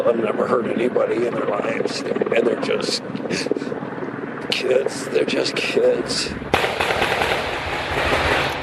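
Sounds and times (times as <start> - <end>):
speech: 0.0 - 3.9, 4.5 - 7.0
rapid gunfire as officers confront a gunman: 6.5 - 8.6.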